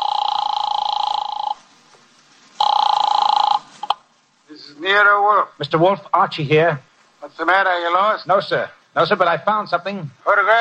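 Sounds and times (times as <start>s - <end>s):
office telephone ringing after dialing: 0.0s - 1.7s, 2.6s - 4.0s
speech: 4.8s - 10.5s.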